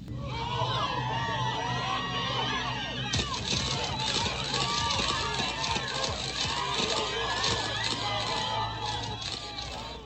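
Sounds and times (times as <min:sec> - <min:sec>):
large crowd of men and women murmuring and gasping: 0:00.0 - 0:10.0
rapid staccato flurry of sharp camera shutter clicks: 0:03.2 - 0:09.9.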